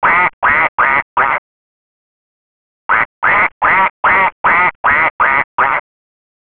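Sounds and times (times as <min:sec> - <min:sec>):
duck quacking: 0:00.0 - 0:01.4, 0:02.9 - 0:05.8.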